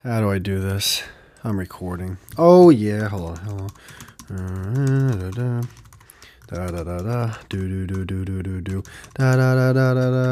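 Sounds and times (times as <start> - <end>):
speech: 0.0 - 5.8, 6.5 - 10.3
computer keyboard typing a password: 2.2 - 10.3
person vocalizing noisily: 2.4 - 10.3.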